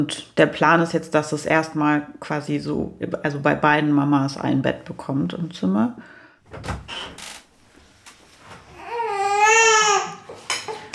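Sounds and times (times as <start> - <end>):
speech: 0.0 - 7.2
faint knocks and rustles: 6.4 - 9.0, 10.2 - 10.9
hungry baby crying: 8.7 - 10.3.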